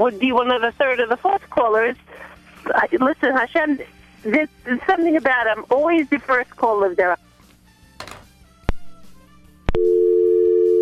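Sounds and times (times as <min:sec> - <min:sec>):
speech: 0:00.0 - 0:07.2
telephone line clicks after a dropped call: 0:08.0 - 0:08.3
telephone busy tone after a radio caller's line drops: 0:09.8 - 0:10.8.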